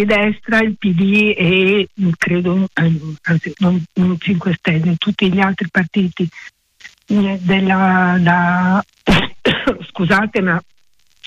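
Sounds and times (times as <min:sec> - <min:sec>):
speech: 0:00.0 - 0:06.5, 0:07.1 - 0:10.7
person's coughing fit: 0:09.1 - 0:09.9.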